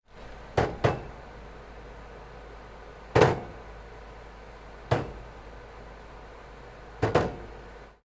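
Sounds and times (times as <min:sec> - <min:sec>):
bowling ball return bump: 0:00.5 - 0:01.2, 0:03.1 - 0:03.6, 0:04.9 - 0:05.3, 0:07.0 - 0:07.6.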